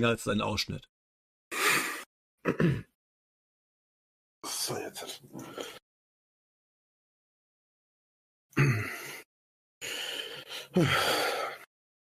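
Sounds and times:
speech: 0.0s - 0.9s, 2.4s - 2.9s, 4.4s - 5.8s, 8.6s - 9.0s, 10.7s - 11.2s
man grunting and groaning: 8.6s - 9.2s, 10.7s - 11.6s.

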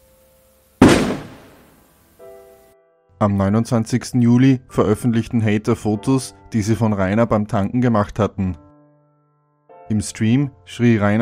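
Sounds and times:
firecracker bang: 0.8s - 1.9s
speech: 3.2s - 8.6s, 9.9s - 11.2s.

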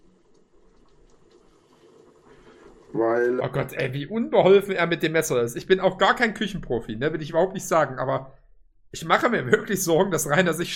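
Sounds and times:
water boiling in a hot dog machine: 0.0s - 6.0s
speech: 2.9s - 10.7s.

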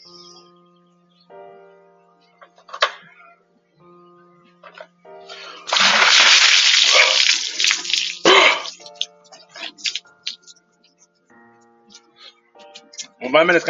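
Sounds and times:
bucket of water dumped over someone: 5.6s - 9.0s.

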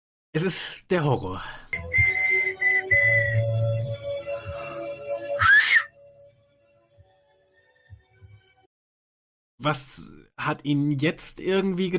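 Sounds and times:
speech: 0.4s - 2.0s, 9.6s - 11.9s
person whistling into a microphone: 1.8s - 3.5s, 5.4s - 5.9s.

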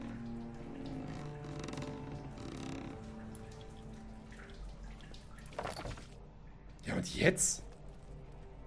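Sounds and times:
bucket being filled with water and hauled up: 0.0s - 6.2s
speech: 7.0s - 7.6s.

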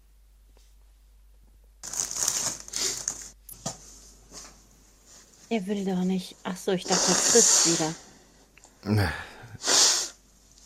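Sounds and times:
speech: 5.5s - 8.1s, 8.8s - 9.7s
person blowing their nose: 6.9s - 7.9s, 9.6s - 10.2s.

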